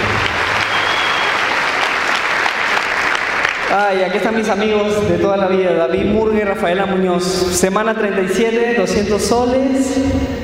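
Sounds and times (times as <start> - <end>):
audience applause: 0.0 - 4.3
speech: 3.7 - 10.4.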